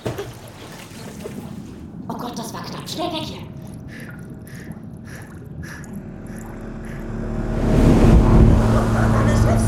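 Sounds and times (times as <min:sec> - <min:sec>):
churning water wash: 0:00.0 - 0:09.6
speech: 0:02.9 - 0:03.5
speedboat engine roaring past on water: 0:05.0 - 0:09.6.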